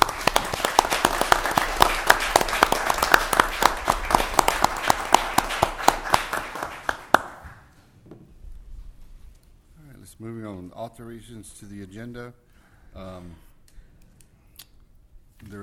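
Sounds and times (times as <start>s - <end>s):
audience clapping at a meeting honoring two students: 0.0s - 7.7s
speech: 10.8s - 13.5s, 15.4s - 15.6s.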